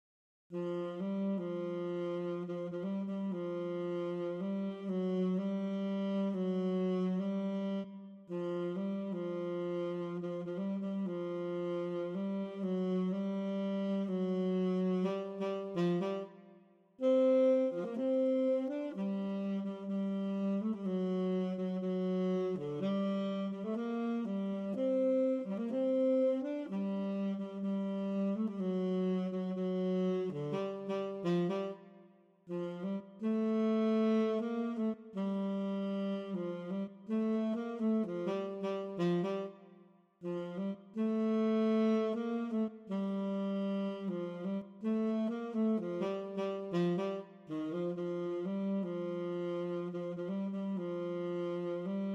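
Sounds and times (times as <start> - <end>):
tenor saxophone: 0.5 - 52.1.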